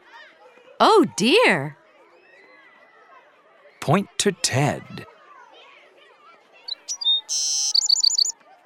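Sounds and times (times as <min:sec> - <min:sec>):
speech: 0:00.8 - 0:01.8, 0:03.9 - 0:05.1
small bird chirping: 0:06.7 - 0:08.3.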